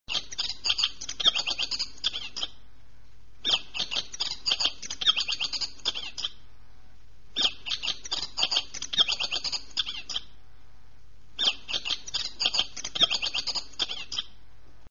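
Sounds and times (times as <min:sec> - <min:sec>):
bird song chattering bursts in a mountain ecosystem: 0:00.1 - 0:02.6, 0:03.4 - 0:06.4, 0:07.4 - 0:10.3, 0:11.4 - 0:14.3
faint low hum: 0:00.1 - 0:14.8.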